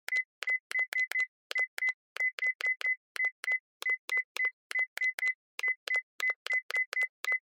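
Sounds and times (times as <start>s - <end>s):
cell phone hardware button beep: 0.1s - 7.4s.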